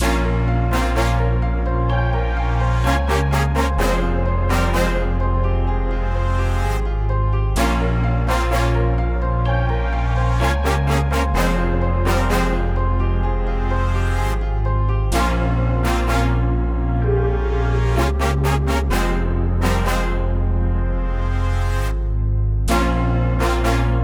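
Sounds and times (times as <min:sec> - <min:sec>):
trap melody loop in F minor: 0:00.0 - 0:24.0.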